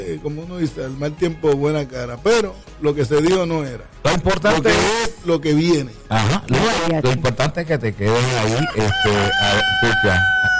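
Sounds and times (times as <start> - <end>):
speech: 0.0 - 10.5
rooster crowing in the morning: 8.4 - 10.5.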